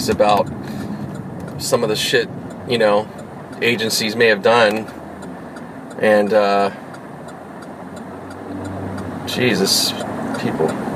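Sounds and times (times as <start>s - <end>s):
speech: 0.0s - 0.8s, 1.6s - 5.0s, 6.0s - 6.8s, 9.3s - 10.9s
soft ticks: 0.0s - 10.9s
steady low road rumble while driving through heavy traffic: 0.0s - 10.9s.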